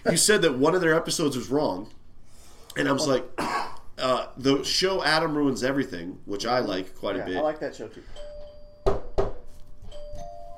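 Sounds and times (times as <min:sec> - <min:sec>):
speech: 0:00.0 - 0:02.0, 0:02.8 - 0:08.3
doorbell ringing: 0:08.0 - 0:10.5.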